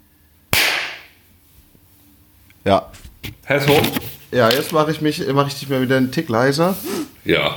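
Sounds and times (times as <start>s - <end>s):
faint noise: 0.0s - 7.5s
loud hand clap: 0.6s - 1.1s
speech: 2.6s - 7.5s.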